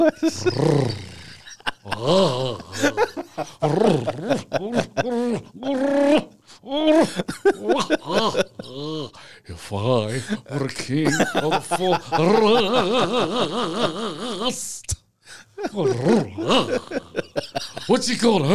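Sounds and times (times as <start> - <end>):
speech: 0.0 - 1.0, 1.9 - 15.0, 15.6 - 18.5
voice imitating a lion with growls and roars: 0.0 - 7.1, 7.7 - 9.2, 15.7 - 17.2
laughter: 0.0 - 9.1, 10.1 - 14.6, 15.5 - 18.5.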